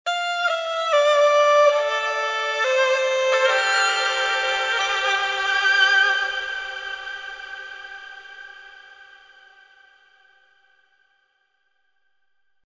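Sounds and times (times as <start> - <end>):
gaohu sustained legato with trills and swells in reverb: 0.1 - 9.2.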